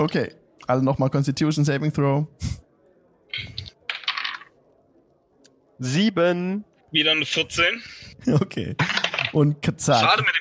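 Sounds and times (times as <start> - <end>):
speech: 0.0 - 2.6, 5.8 - 10.3
dice rolled onto a table during a tabletop role-playing game: 3.6 - 4.6, 8.8 - 9.4.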